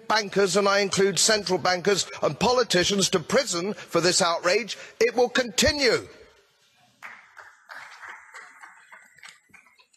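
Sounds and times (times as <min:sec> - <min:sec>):
speech: 0:00.1 - 0:06.2
crowd applauding after a speech: 0:07.0 - 0:09.9.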